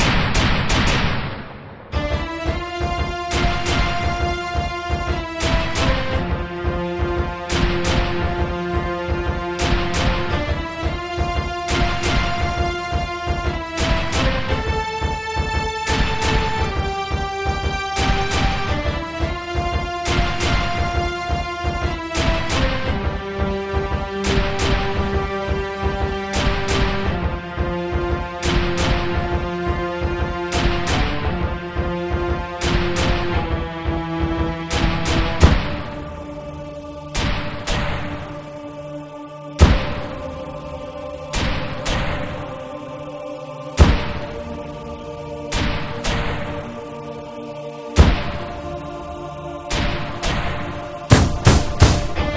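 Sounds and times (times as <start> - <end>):
strings: 0.1 - 52.3
brass: 2.0 - 52.3
choir: 2.0 - 52.3.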